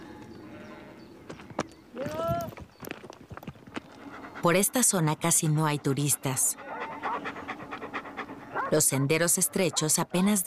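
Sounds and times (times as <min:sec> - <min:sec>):
sheep hooves walking on rocky mountain path: 0:01.2 - 0:04.8
speech: 0:04.4 - 0:06.7, 0:08.7 - 0:10.4.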